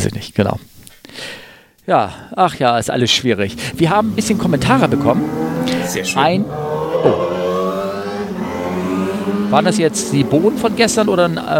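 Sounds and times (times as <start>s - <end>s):
speech: 0.2s - 1.3s, 1.9s - 7.4s, 9.5s - 11.5s
motorcycle engine humming while passing by: 3.1s - 11.5s.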